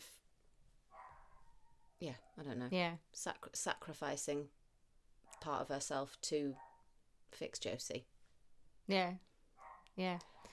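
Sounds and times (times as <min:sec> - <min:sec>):
female dog barking in the background: 0:00.9 - 0:02.5, 0:05.3 - 0:05.6, 0:06.5 - 0:06.9, 0:09.6 - 0:10.5
speech: 0:02.0 - 0:04.6, 0:05.3 - 0:06.7, 0:07.3 - 0:08.1, 0:08.9 - 0:09.3, 0:10.0 - 0:10.5.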